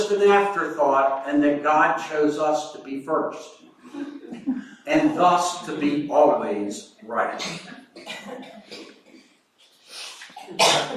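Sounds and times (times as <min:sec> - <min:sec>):
speech: 0:00.0 - 0:08.9, 0:10.5 - 0:10.9
harsh breathy coughs: 0:07.4 - 0:09.0, 0:10.4 - 0:10.9.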